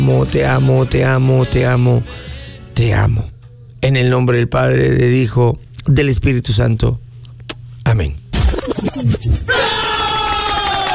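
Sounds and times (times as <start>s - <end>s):
speech: 0.0s - 7.0s, 7.9s - 9.8s
crowd cheering and shouting: 9.5s - 10.9s.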